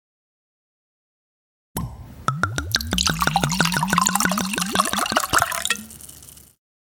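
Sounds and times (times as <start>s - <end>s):
rosé wine poured from a bottle into a glass: 2.4s - 6.6s.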